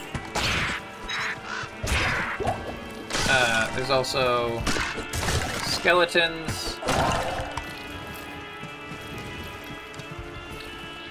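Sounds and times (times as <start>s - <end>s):
crows cawing in a video game: 0.3s - 2.6s, 4.6s - 5.1s
gritty crunching impacts: 1.7s - 11.0s
speech: 3.4s - 5.0s, 5.8s - 7.2s.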